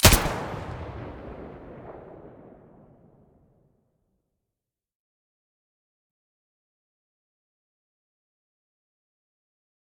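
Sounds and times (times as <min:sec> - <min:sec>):
AUG rifle muzzle firing: 0:00.0 - 0:02.7.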